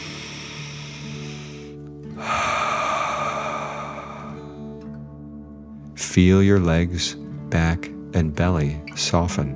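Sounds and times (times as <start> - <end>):
louder forceful exhale pushed out through the mouth: 0.0 - 4.8
slow audible breath drawn in through the nose: 0.0 - 4.9
speech: 6.1 - 9.5.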